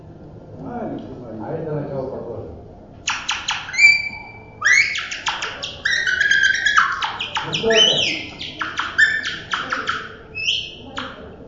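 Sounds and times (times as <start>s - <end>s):
soft noisy background: 0.0s - 11.4s
nightingale singing: 3.0s - 11.2s
speech: 7.6s - 8.3s.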